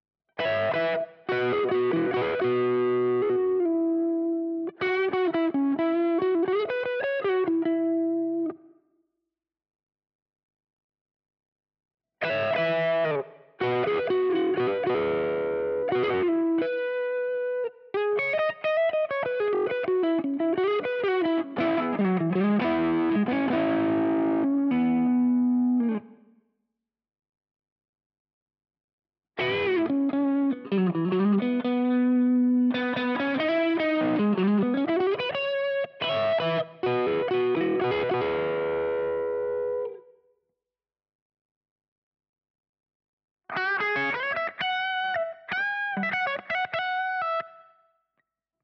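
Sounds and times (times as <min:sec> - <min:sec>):
Jazzmaster electric guitar crunch lead: 0:00.4 - 0:08.6, 0:12.2 - 0:26.2, 0:29.4 - 0:40.0, 0:43.5 - 0:47.6.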